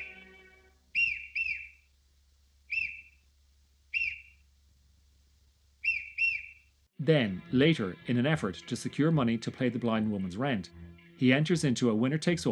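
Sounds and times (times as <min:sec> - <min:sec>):
hiccups through a swallowed whistle: 0:00.0 - 0:01.8, 0:02.7 - 0:03.2, 0:04.0 - 0:04.4, 0:05.8 - 0:06.6
faint low hum: 0:00.0 - 0:12.5
speech: 0:07.0 - 0:12.5.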